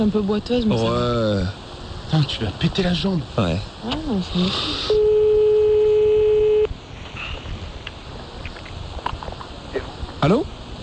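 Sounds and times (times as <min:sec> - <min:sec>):
speech: 0:00.0 - 0:05.0
steady telephone line tone of a call being placed: 0:04.9 - 0:06.7.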